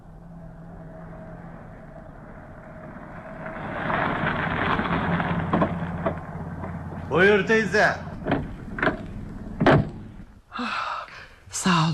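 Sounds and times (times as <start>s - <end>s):
taxi engine rumble while pulling up: 0.0s - 10.5s
speech: 7.2s - 8.0s
short knocks: 8.1s - 10.3s.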